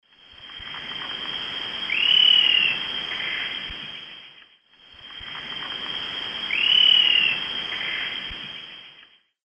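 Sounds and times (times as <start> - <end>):
Lophotriccus vitiosus calls in the Eastern Lowlands of South America: 1.8 - 4.4, 5.1 - 9.1.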